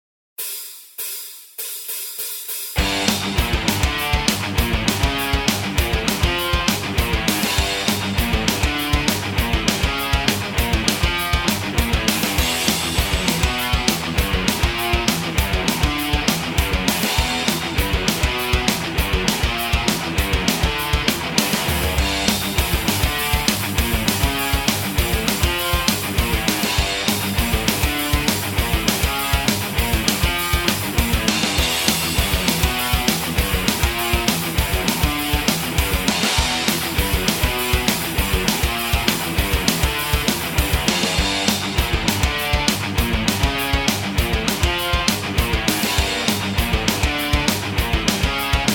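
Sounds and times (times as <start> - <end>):
metal backing track with bass: 0.4 - 48.7.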